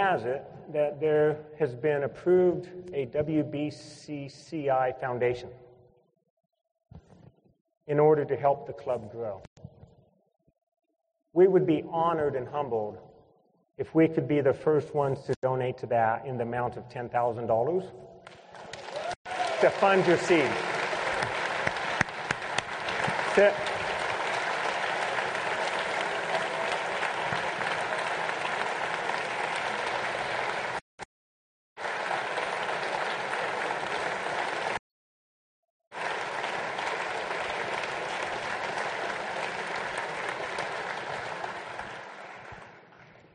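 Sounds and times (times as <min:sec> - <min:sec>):
speech: 0:00.0 - 0:05.7, 0:07.9 - 0:09.5, 0:11.4 - 0:13.1, 0:13.8 - 0:18.4, 0:19.6 - 0:20.7, 0:23.4 - 0:23.7
large audience applauding: 0:18.3 - 0:30.8, 0:31.8 - 0:34.8, 0:35.9 - 0:43.2.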